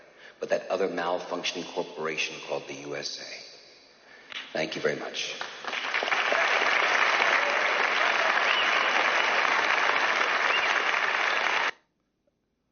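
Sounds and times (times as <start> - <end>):
speech: 0.4 - 3.5, 4.5 - 5.6
large audience applauding in a film clip: 5.4 - 11.7.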